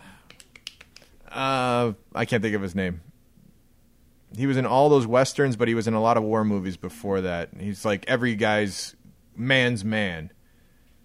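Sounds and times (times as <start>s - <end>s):
soft crisp finger snaps by person trying to remember: 0.2s - 1.2s
speech: 1.3s - 3.1s, 4.3s - 10.4s.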